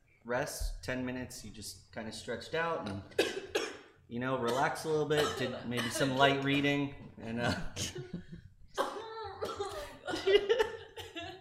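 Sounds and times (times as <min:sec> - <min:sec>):
speech: 0:00.2 - 0:03.4, 0:04.1 - 0:08.3
person coughing during a tabletop role-playing game session: 0:02.9 - 0:06.4, 0:08.8 - 0:11.3.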